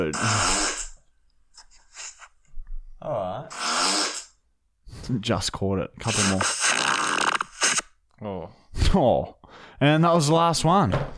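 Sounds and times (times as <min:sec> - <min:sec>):
speech: 0:00.0 - 0:00.6, 0:05.1 - 0:06.6, 0:08.2 - 0:11.1
long loud buzzy fart: 0:00.0 - 0:01.0, 0:03.5 - 0:04.4, 0:06.1 - 0:07.9.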